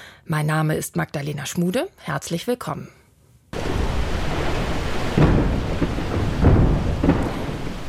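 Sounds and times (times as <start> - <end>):
speech: 0.2 - 3.0
rumbling roar of an ice shelf breaking off in Antarctica: 3.6 - 7.8.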